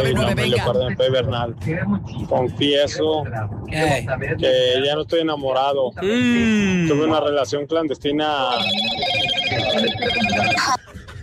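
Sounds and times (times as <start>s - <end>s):
speech: 0.0s - 11.0s
telephone ringing as a call is dialled during a confessions phone-in: 8.5s - 10.8s.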